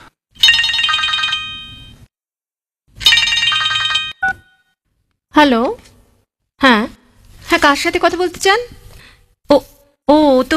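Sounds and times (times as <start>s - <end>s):
telephone bell ringing: 0.4s - 2.1s, 3.0s - 4.8s
speech: 5.4s - 5.9s, 7.6s - 8.8s, 9.5s - 10.5s.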